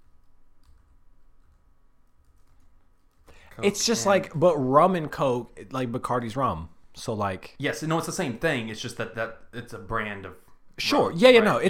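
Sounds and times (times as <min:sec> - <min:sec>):
keyboard typing with soft key clicks: 0:00.0 - 0:04.0
steady low hum: 0:00.0 - 0:11.6
speech: 0:03.6 - 0:11.6.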